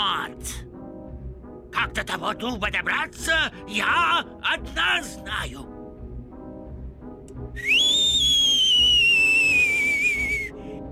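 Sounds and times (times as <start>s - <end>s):
speech: 0.0s - 0.8s, 1.8s - 5.8s, 7.6s - 8.0s
loud sustained human whistle sliding downward in pitch: 7.6s - 10.6s.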